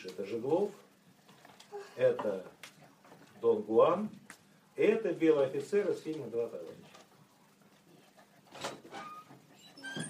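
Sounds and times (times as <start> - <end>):
speech: 0.0 - 0.9, 2.0 - 2.6, 3.4 - 6.9
door opening and closing: 8.5 - 10.0.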